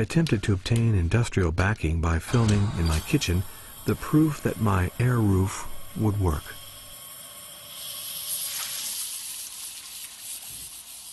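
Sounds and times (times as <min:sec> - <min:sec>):
speech: 0:00.0 - 0:06.6
running water stream pouring toward a tile in a kitchen: 0:05.7 - 0:11.1.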